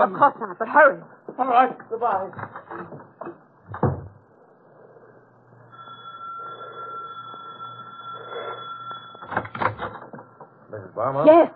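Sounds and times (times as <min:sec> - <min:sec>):
speech: 0:00.0 - 0:03.8, 0:10.7 - 0:11.5
door shutting with thuds: 0:03.7 - 0:04.2
steady high tone: 0:05.7 - 0:09.5
door opening with knocks and rattles: 0:09.2 - 0:10.2.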